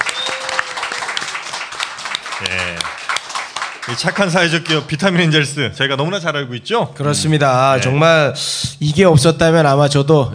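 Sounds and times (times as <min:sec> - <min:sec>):
voice rising through the clapping: 0:00.0 - 0:04.8
sustained applause from a crowd: 0:00.0 - 0:04.9
speech: 0:02.4 - 0:03.0, 0:03.9 - 0:10.3.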